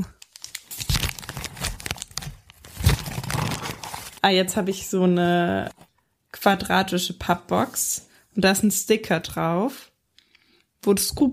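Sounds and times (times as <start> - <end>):
gift wrapping paper crinkling and tearing as a gift is unwrapped: 0.0 - 4.9
speech: 4.2 - 5.8, 6.4 - 9.9, 10.8 - 11.3.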